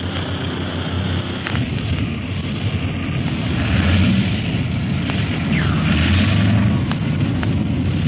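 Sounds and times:
big plane engine roar with heavy low rumble: 0:00.0 - 0:08.0.

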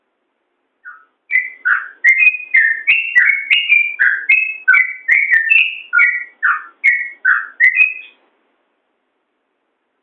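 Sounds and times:
yellow-vented bulbul singing bubbly whistles: 0:00.8 - 0:08.2.

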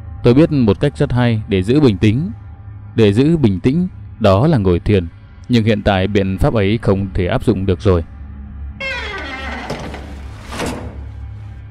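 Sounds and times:
speech: 0:00.2 - 0:02.4, 0:03.0 - 0:08.1
wardrobe door swinging open by itself with a squeaky creak: 0:08.8 - 0:11.4
rough scraping of a wardrobe door: 0:08.9 - 0:11.5.

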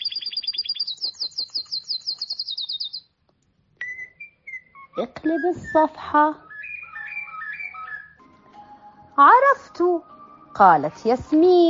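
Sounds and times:
small bird chirping inside a covered cage: 0:00.0 - 0:03.2, 0:03.8 - 0:08.2
speech: 0:05.0 - 0:06.5, 0:09.2 - 0:11.6.

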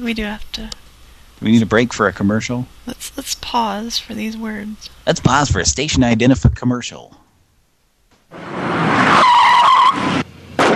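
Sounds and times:
speech: 0:00.0 - 0:00.8, 0:01.4 - 0:07.2
car skidding with tire screech: 0:08.3 - 0:10.3.

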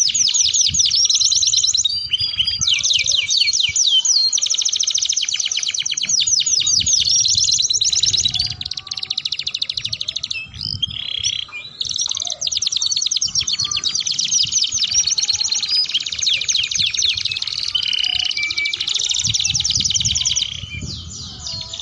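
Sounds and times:
Belgian Atlantic canary song: 0:00.0 - 0:21.8.

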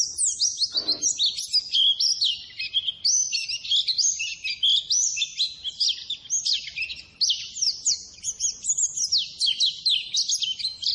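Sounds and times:
white-eye training song for cage birds: 0:00.0 - 0:10.9.

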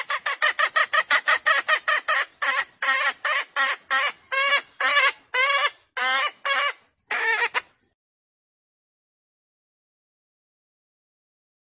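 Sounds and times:
female junglefowl squawking lure call: 0:00.0 - 0:07.7.

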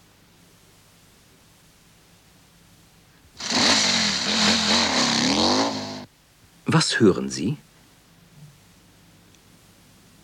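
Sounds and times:
motorcycle engine revving: 0:03.4 - 0:06.1
speech: 0:06.7 - 0:07.7.

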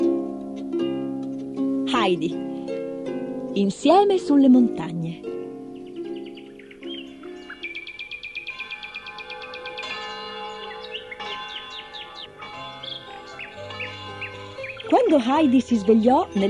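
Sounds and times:
small birds singing: 0:00.0 - 0:16.4
speech: 0:02.0 - 0:02.5, 0:03.6 - 0:05.3, 0:15.2 - 0:16.4
church bells ringing in a valley: 0:05.8 - 0:16.4.

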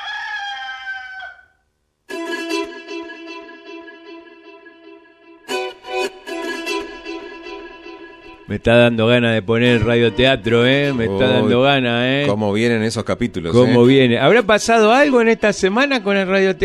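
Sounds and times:
rooster crowing: 0:00.0 - 0:01.6
speech: 0:08.5 - 0:16.6.

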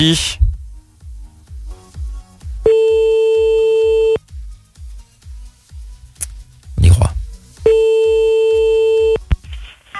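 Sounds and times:
speech: 0:00.0 - 0:00.4
telephone line tone during a callback: 0:02.7 - 0:04.2, 0:07.7 - 0:09.2.

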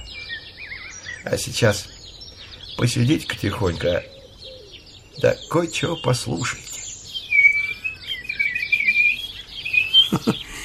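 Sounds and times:
speech: 0:01.2 - 0:02.0, 0:02.8 - 0:04.1, 0:05.2 - 0:06.7
person whistling birdlike trills to call birds into song: 0:06.7 - 0:10.6.

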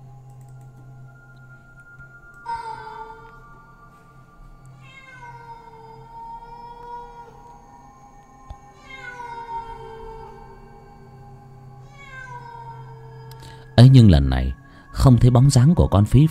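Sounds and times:
steady low hum: 0:00.0 - 0:16.3
wild cats yowling mournfully at night: 0:04.8 - 0:07.7, 0:08.5 - 0:13.7
speech: 0:13.8 - 0:16.3.

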